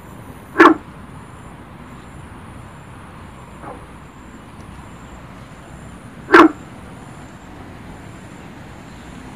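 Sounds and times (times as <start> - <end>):
Guenther's frog Sylvirana guentheri calling: 0.5 - 1.5, 3.4 - 4.3, 5.7 - 7.1.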